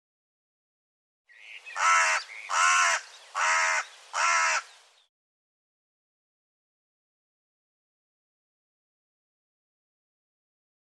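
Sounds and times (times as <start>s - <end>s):
bird calling with coarse rasping caws: 1.3s - 4.8s.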